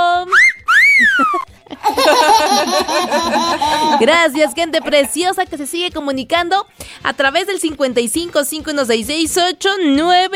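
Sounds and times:
person whistling loud sliding notes: 0:00.3 - 0:01.4
laughter: 0:01.0 - 0:05.3
speech: 0:03.5 - 0:10.3.

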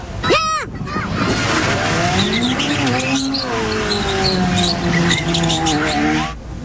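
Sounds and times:
car engines revving: 0:01.0 - 0:06.4
car tires squealing during driving stunts: 0:01.2 - 0:06.4.

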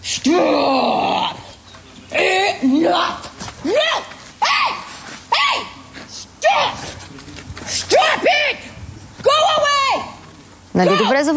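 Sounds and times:
faint outdoor background in a wild park: 0:00.0 - 0:11.3
speech: 0:00.2 - 0:00.9, 0:10.8 - 0:11.3
woman shouting at an approaching bear in a wild park: 0:02.3 - 0:05.8, 0:06.4 - 0:06.8, 0:07.9 - 0:10.2, 0:10.8 - 0:11.3.

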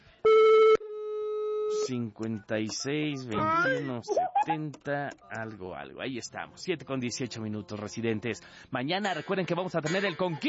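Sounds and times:
loud steady electronic phone tone: 0:00.2 - 0:01.9
speech: 0:01.9 - 0:10.4.

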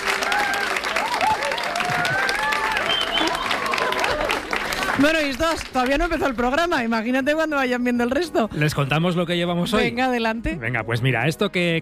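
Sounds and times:
people whooping and cheering: 0:00.0 - 0:04.8
studio audience applause: 0:00.0 - 0:06.3
speech: 0:05.0 - 0:11.8.

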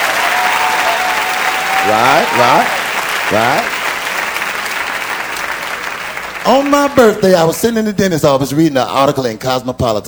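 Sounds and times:
voices rising over the clapping: 0:00.0 - 0:07.4
audience clapping and applause: 0:00.0 - 0:09.2
speech: 0:01.8 - 0:03.8, 0:06.4 - 0:10.0.

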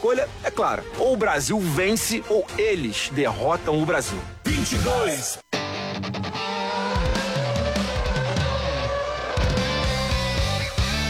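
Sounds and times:
speech: 0:00.0 - 0:05.4
Formula 1 race car engines screaming past at full speed on a street circuit: 0:05.9 - 0:11.0.

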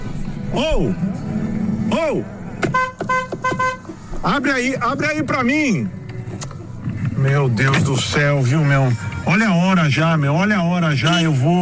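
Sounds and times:
car engine and road noise: 0:00.0 - 0:11.6
speech: 0:00.5 - 0:06.0, 0:07.2 - 0:11.6
short bright car horn toots: 0:02.6 - 0:03.9, 0:11.0 - 0:11.5.

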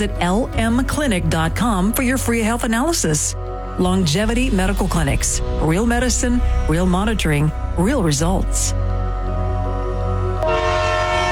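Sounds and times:
speech: 0:00.0 - 0:08.8
low rumble of a passenger train: 0:00.0 - 0:10.6
Amtrak Cascades passenger train horn: 0:10.4 - 0:11.3.

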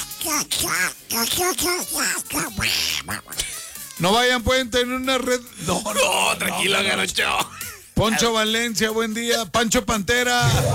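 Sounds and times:
speech: 0:00.3 - 0:10.7
person doing raspy duck-voice imitation: 0:00.5 - 0:03.9.

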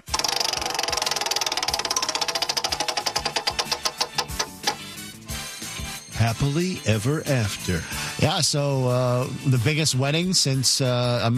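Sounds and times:
spun prize wheel ticking as it slows: 0:00.0 - 0:04.9
speech: 0:06.2 - 0:11.3.

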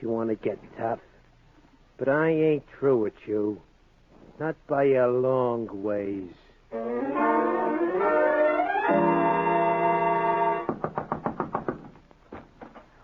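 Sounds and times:
speech: 0:00.0 - 0:01.1, 0:02.0 - 0:03.7, 0:04.4 - 0:07.6
rising, sustained musical tone: 0:06.7 - 0:10.7
loud, heavy knocks on a door: 0:10.7 - 0:12.0.

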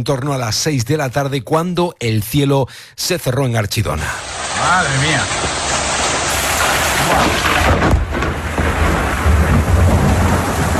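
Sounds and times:
speech: 0:00.0 - 0:05.8, 0:07.0 - 0:07.8
heavy rain pouring: 0:04.1 - 0:10.7
deep rumbling thunder: 0:04.2 - 0:10.7.

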